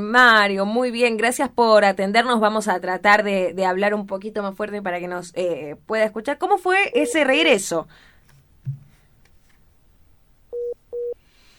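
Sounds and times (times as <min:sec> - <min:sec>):
speech: 0:00.0 - 0:08.8
phone beeps signalling another call coming in: 0:06.9 - 0:07.3, 0:10.6 - 0:11.2
faint thump: 0:08.6 - 0:09.0.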